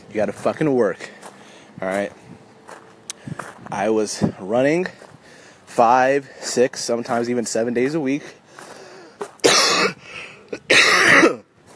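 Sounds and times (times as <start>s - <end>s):
speech: 0.1s - 1.2s, 1.8s - 2.3s, 3.7s - 5.0s, 5.8s - 8.4s
person coughing: 9.4s - 11.5s.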